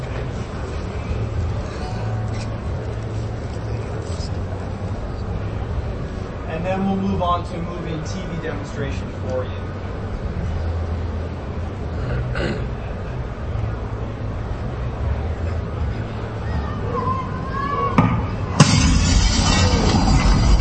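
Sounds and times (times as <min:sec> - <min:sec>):
steady low rumbling background: 0:00.0 - 0:20.5
speech: 0:06.6 - 0:09.8
baseball smashing through glass: 0:18.6 - 0:20.5.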